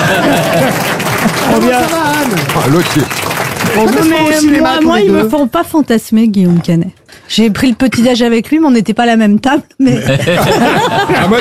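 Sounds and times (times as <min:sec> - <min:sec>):
laughter: 0:00.0 - 0:05.2, 0:09.8 - 0:11.3
audience applause: 0:00.0 - 0:05.4
speech: 0:01.2 - 0:11.3.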